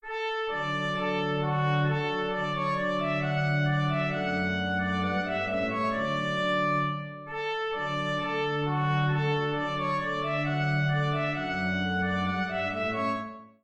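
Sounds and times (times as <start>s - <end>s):
folk wedding march song from Skane: 0.3s - 13.4s.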